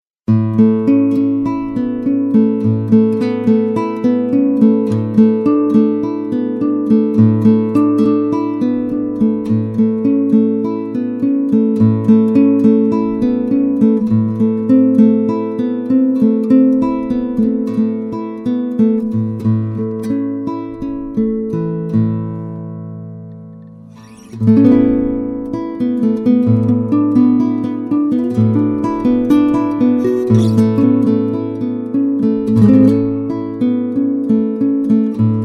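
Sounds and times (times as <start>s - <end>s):
Ziricote 5 string guitar: 0.3s - 35.4s.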